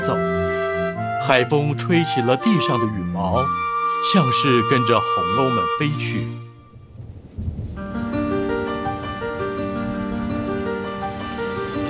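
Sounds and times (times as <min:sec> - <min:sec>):
sustained musical tones: 0:00.0 - 0:06.9, 0:07.8 - 0:11.8
speech: 0:00.1 - 0:00.4, 0:01.3 - 0:06.5
rain turning into heavy downpour: 0:05.5 - 0:11.8.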